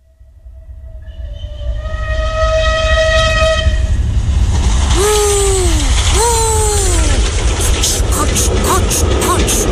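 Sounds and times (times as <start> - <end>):
train rumbling on rails: 0.0 - 9.7
long steady train horn: 0.1 - 4.1
wheels clattering over track joints: 7.0 - 9.7.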